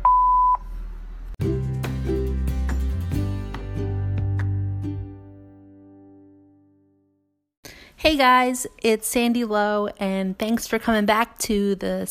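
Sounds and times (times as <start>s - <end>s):
answering machine beep: 0.0s - 0.6s
music with plucked and struck notes: 1.4s - 7.2s
speech: 8.0s - 12.0s.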